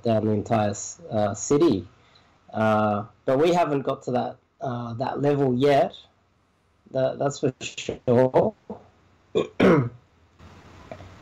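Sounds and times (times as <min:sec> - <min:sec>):
speech: 0:00.0 - 0:06.1, 0:06.9 - 0:10.0
harsh throaty cough: 0:09.4 - 0:10.0.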